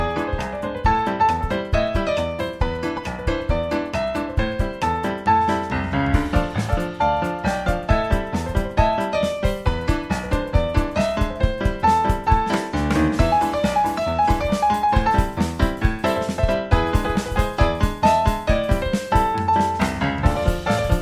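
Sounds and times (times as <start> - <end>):
ragtime piano: 0.0 - 21.0.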